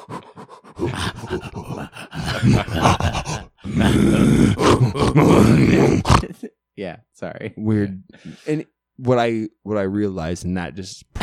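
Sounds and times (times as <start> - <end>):
person imitating gorilla noises with rough grunts and groans: 0.0 - 6.4
speech: 0.8 - 6.1, 7.6 - 11.2.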